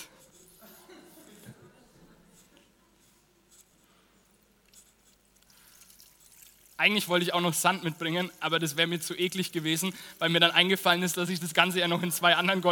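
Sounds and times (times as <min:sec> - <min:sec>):
water poured into a full glass during a church service: 0:05.4 - 0:10.2
speech: 0:06.8 - 0:12.6.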